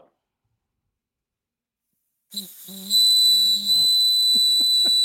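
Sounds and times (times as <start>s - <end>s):
small orange bird whistle blown in a warbling trilling call: 2.3s - 5.0s.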